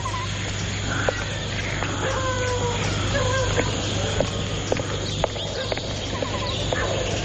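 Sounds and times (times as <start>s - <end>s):
busy noise: 0.0s - 7.2s
horse hoof clops: 2.8s - 7.2s.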